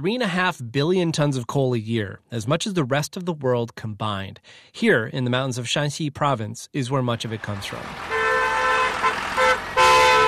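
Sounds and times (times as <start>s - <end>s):
speech: 0.0s - 8.1s
road noise on a mountain road: 7.1s - 10.2s
red coal truck horn blasts on a mountain road: 8.0s - 10.2s.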